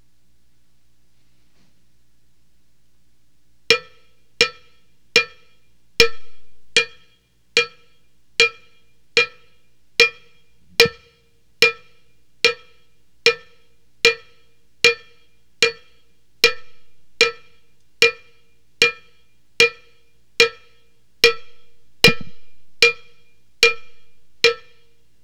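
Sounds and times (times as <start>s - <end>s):
cowbell: 3.7s - 25.2s.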